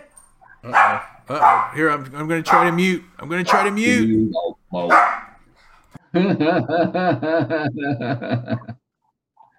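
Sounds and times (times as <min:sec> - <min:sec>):
speech: 0:00.6 - 0:05.2, 0:06.1 - 0:08.8
dog barking with a brief yelping tail: 0:00.7 - 0:01.8, 0:02.5 - 0:02.8, 0:03.5 - 0:03.8, 0:04.9 - 0:05.4
laughter: 0:06.0 - 0:08.8.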